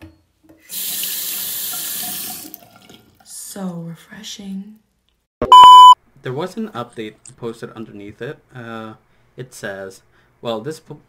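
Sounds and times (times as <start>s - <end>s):
water running from a tap: 0.6s - 3.5s
speech: 3.6s - 4.9s, 6.2s - 11.0s.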